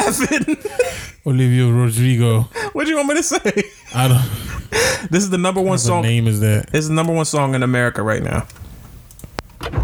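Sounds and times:
laughter: 0.0 - 1.1, 2.6 - 5.2
speech: 0.1 - 8.7
sharp clicks: 8.4 - 9.7.

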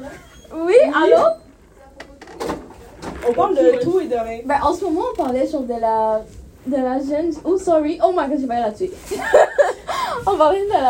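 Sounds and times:
speech: 0.1 - 1.4, 3.3 - 10.8
door closing: 0.3 - 3.8
laughter: 9.1 - 10.2.

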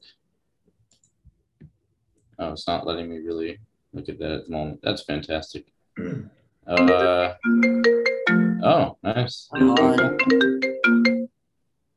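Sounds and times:
speech: 2.4 - 11.0
phone ringtone during incoming call: 6.8 - 8.7, 9.6 - 11.3.

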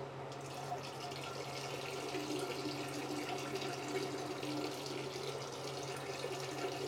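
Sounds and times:
stream of urine into a toilet bowl: 0.3 - 6.8.

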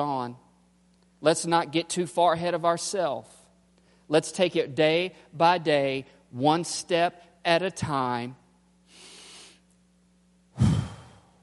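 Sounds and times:
speech: 0.0 - 0.4, 1.2 - 3.4, 4.1 - 8.4
faint low hum: 0.0 - 11.4
slow breath in and out: 10.6 - 11.4.

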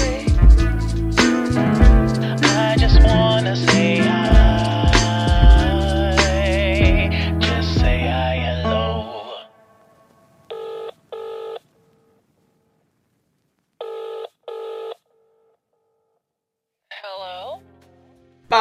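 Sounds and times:
music: 0.0 - 9.5, 17.2 - 18.5
telephone ringing with double-ring bursts: 10.5 - 12.2, 13.8 - 15.5.

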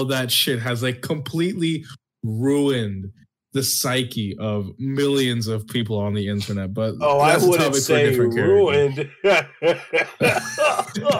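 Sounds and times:
speech: 0.0 - 11.1
laughter: 7.1 - 11.1
person coughing harshly: 10.2 - 11.1.

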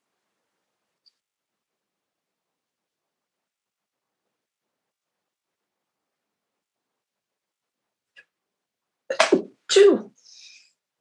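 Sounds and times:
person sneezing: 9.1 - 10.2.

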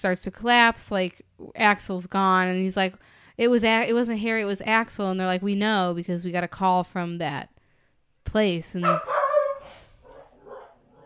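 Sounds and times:
speech: 0.0 - 7.5, 8.3 - 9.2
little dog barking: 8.8 - 11.0.

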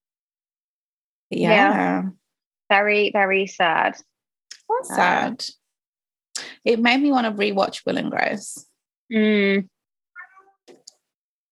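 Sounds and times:
speech: 1.3 - 4.1, 4.7 - 5.6, 6.6 - 9.7
loud drawn-out cat meow: 10.2 - 10.5
softer shorter chirpy cat sounds: 10.2 - 10.6.

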